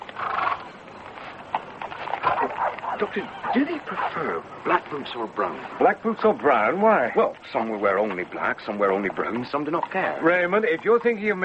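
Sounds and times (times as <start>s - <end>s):
doctor's horse arriving with hooves clip-clopping: 0.0s - 3.7s, 7.3s - 11.4s
noisy background: 0.0s - 11.4s
speech: 3.0s - 11.4s.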